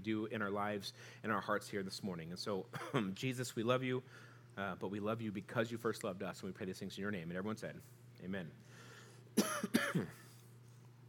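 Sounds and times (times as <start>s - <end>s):
speech: 0.0s - 8.8s, 9.9s - 10.2s
faint steady hum: 0.0s - 11.0s
harsh coughs: 2.7s - 3.1s, 9.4s - 10.4s.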